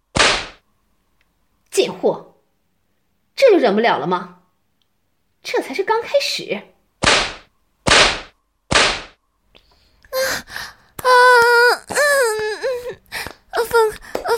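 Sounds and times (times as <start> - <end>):
whip lashes cracking: 0.2 - 0.6, 7.0 - 9.2
speech: 1.8 - 2.3, 3.6 - 4.4, 5.4 - 6.7
person crying out in drawn-out wails and moans: 10.1 - 14.0.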